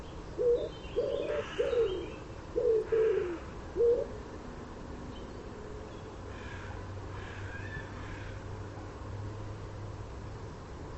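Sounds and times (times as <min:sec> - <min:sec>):
common wood pigeon cooing: 0:00.4 - 0:04.2.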